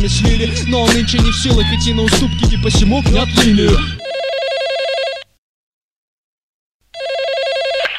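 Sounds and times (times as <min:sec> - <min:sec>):
speech: 0:00.0 - 0:04.1
mobile phone call-waiting tone with a warbling electronic trill: 0:03.1 - 0:05.3, 0:07.0 - 0:07.9.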